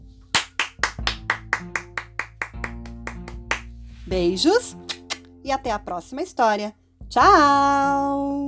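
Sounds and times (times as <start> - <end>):
hands clapping: 0.3 - 3.8
speech: 4.1 - 4.9, 5.5 - 8.3.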